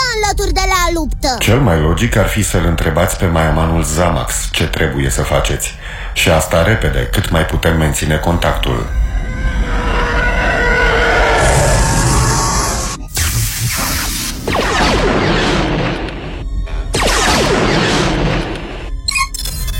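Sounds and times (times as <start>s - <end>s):
speech: 0.3s - 9.0s
roaring rumbling noise: 8.6s - 13.1s
sharp cracks: 13.2s - 16.4s, 17.0s - 19.0s
gunfire booming blasts hitting a ship in battle: 13.2s - 18.9s.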